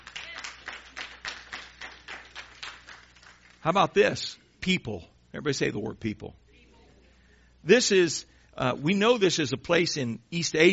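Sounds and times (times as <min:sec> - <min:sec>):
audience clapping: 0:00.0 - 0:03.8
speech: 0:03.6 - 0:06.4, 0:07.6 - 0:10.7.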